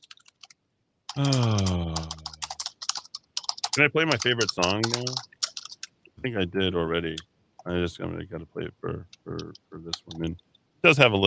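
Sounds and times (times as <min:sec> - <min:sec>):
typing on a computer keyboard: 0:00.0 - 0:05.9
speech: 0:01.2 - 0:01.8, 0:03.8 - 0:05.3, 0:06.2 - 0:11.2.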